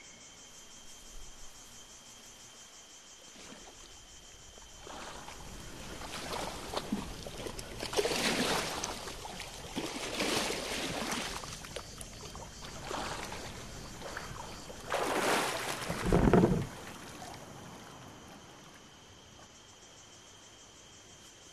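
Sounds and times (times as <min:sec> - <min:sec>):
boat moving through calm lagoon water: 0:03.9 - 0:19.1.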